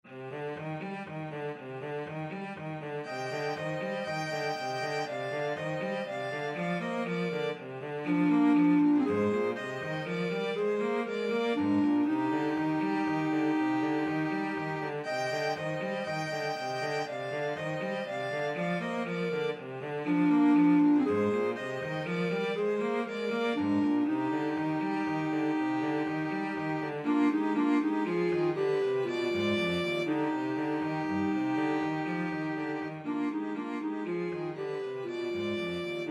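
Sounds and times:
cello: 0.0 - 36.0
clarinet: 0.0 - 36.0
violin: 0.0 - 36.0.

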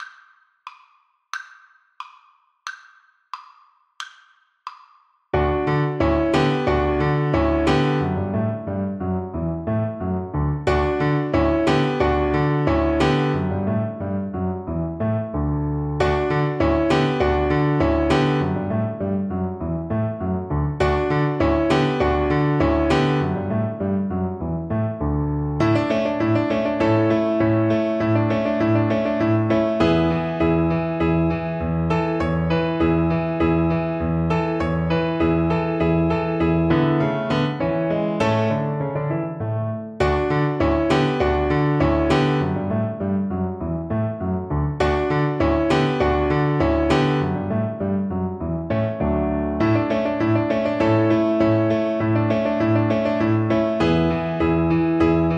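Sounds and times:
musette: 5.4 - 55.3.

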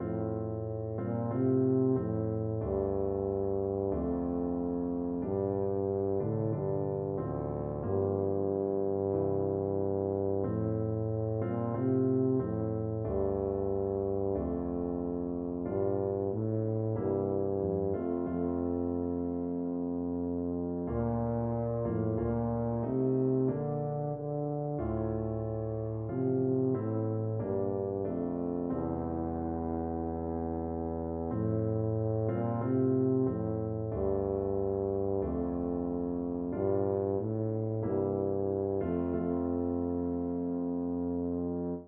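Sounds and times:
tuba playing a carol: 0.0 - 41.8.

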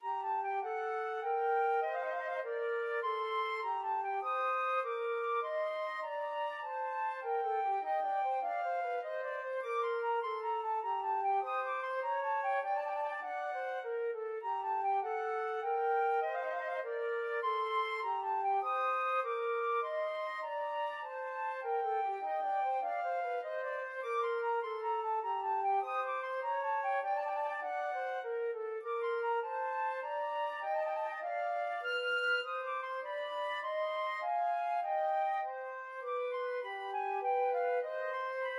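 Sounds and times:
minuet played as a flute duet: 0.0 - 38.5.

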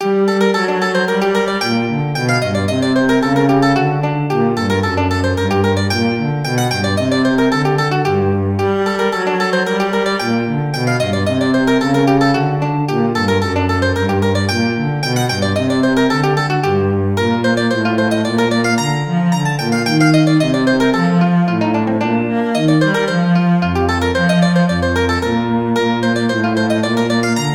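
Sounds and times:
cello: 0.0 - 27.5
mandolin: 0.0 - 27.5.

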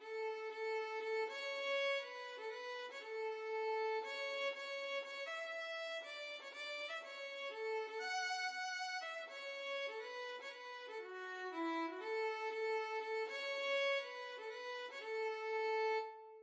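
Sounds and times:
violin playing a children's song: 0.0 - 16.4.

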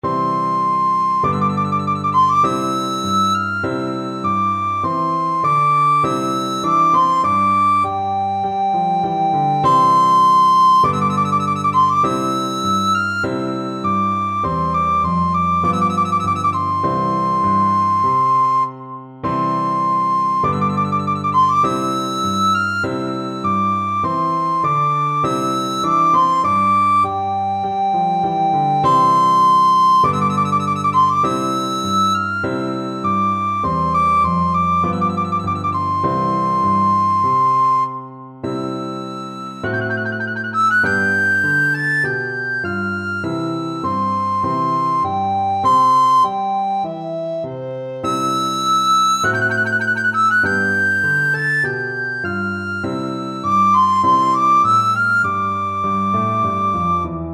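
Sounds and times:
recorder playing a trumpet voluntary: 0.0 - 57.3.

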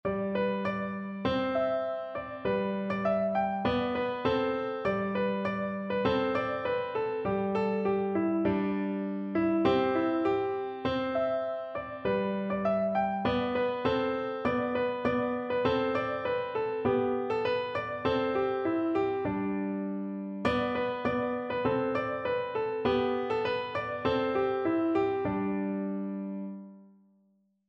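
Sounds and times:
cowboy piano music: 0.0 - 26.8.

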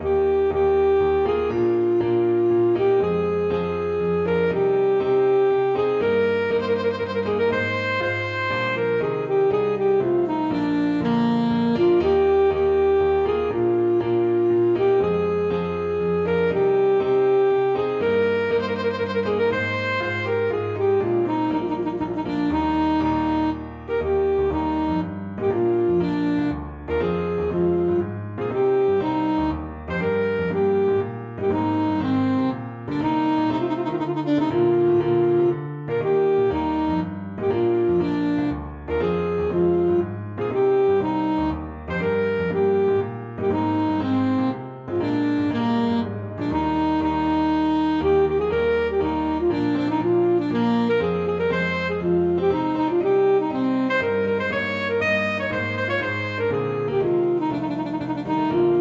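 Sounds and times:
chaconne on saxophone: 0.0 - 58.7.

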